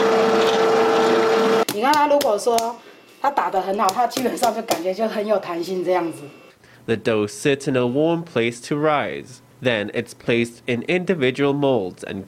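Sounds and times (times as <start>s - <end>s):
blender mixing flour, yeast, sourdough starter and soy milk for bread dough: 0.0s - 1.7s
speech: 2.1s - 12.2s.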